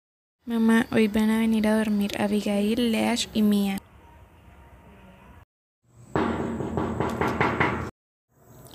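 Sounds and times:
speech: 0:00.5 - 0:03.9
quick knocks on a door: 0:06.2 - 0:07.9.

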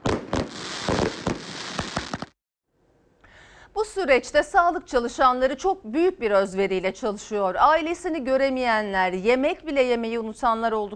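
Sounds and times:
fireworks display bursting: 0:00.0 - 0:02.4
speech: 0:03.8 - 0:10.9.

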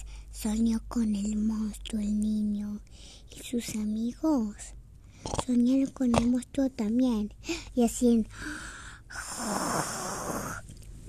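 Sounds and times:
speech: 0:00.4 - 0:10.5
person imitating snoring: 0:09.1 - 0:10.6.

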